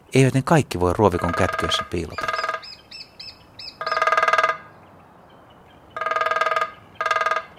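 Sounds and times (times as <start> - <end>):
speech: 0.1 - 2.3
lesser spotted woodpecker rapid even drumming: 0.9 - 4.8, 6.0 - 7.5
lesser spotted woodpecker shrill kee calls: 1.2 - 7.5.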